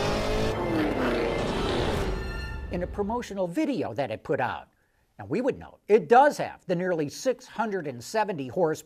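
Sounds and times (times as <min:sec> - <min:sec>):
supercharged 6.2-liter V8 engine of a Cadillac Escalade revving through gears: 0:00.0 - 0:02.2
speech: 0:02.8 - 0:08.8.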